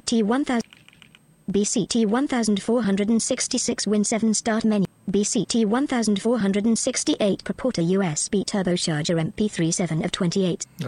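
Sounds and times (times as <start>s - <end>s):
speech: 0.1s - 0.8s, 1.5s - 10.8s
key shortcuts typed on a computer keyboard: 0.6s - 1.2s.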